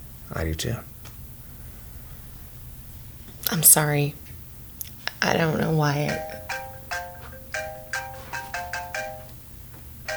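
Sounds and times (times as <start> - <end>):
speech: 0.3 - 0.9, 3.5 - 4.2, 5.2 - 6.6
phone alert chime for a new voicemail: 6.0 - 9.4.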